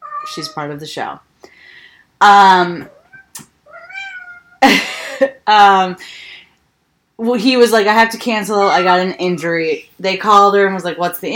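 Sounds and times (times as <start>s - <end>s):
domestic cat meowing: 0.0s - 0.6s, 2.9s - 4.6s
speech: 0.2s - 1.6s, 2.2s - 3.0s, 4.6s - 6.3s, 7.2s - 11.3s.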